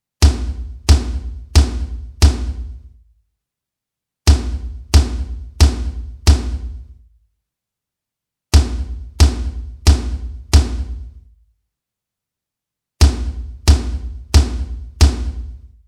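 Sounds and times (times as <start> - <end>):
floor tom drum hits with 125Hz boost: 0.2 - 2.7, 4.3 - 6.8, 8.6 - 11.0, 13.0 - 15.6.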